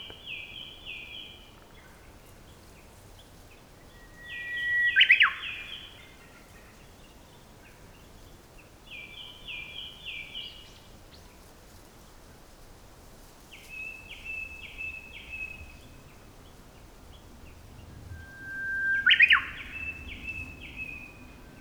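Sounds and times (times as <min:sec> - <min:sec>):
common nightingale singing: 0:03.9 - 0:06.0, 0:13.7 - 0:21.5.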